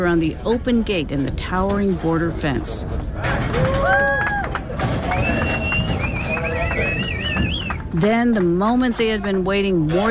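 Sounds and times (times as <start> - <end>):
speech: 0.0 - 4.0, 8.0 - 10.0
rumble of cattle hooves: 0.0 - 10.0
herders whistling while herding cattle: 5.0 - 7.9.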